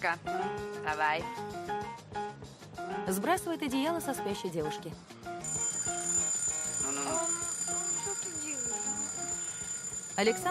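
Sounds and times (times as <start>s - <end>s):
speech: 0.0s - 5.4s, 10.2s - 10.4s
alarm clock ringing at a sleeping girl's ear: 5.4s - 10.4s.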